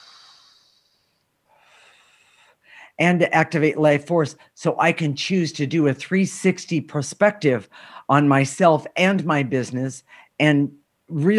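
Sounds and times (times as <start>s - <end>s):
deep breath taken slowly: 0.0s - 3.0s, 7.7s - 8.1s, 10.1s - 10.4s
speech: 3.0s - 11.3s.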